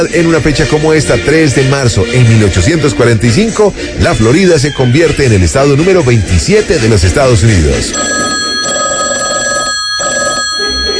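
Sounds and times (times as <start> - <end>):
speech: 0.0 - 8.8
telephone bell ringing with a metallic jangle: 7.9 - 10.9.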